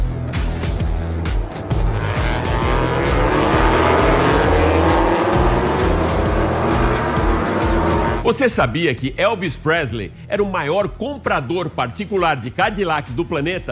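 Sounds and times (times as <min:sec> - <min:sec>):
MotoGP racing motorcycle engines roaring on a race track: 0:00.1 - 0:08.2
speech: 0:08.3 - 0:13.7.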